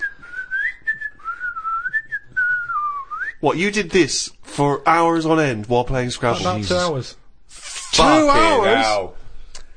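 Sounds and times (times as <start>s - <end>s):
person whistling a wavering meandering tune while playing Scrabble: 0.0s - 3.4s
speech: 3.4s - 7.2s, 8.0s - 9.2s.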